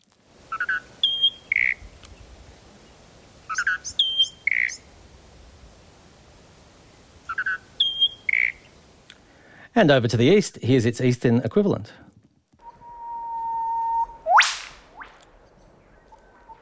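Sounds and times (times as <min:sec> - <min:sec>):
faint noise: 0:00.0 - 0:16.6
calls of the western species of a pair of closely related birds: 0:00.5 - 0:01.8, 0:03.5 - 0:04.8, 0:07.3 - 0:08.7
speech: 0:09.8 - 0:12.0.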